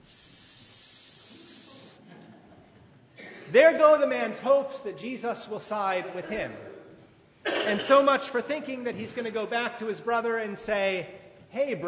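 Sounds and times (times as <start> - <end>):
air hissing out of a deflating balloon: 0.0 - 2.1
speech: 3.5 - 6.7, 7.7 - 11.8.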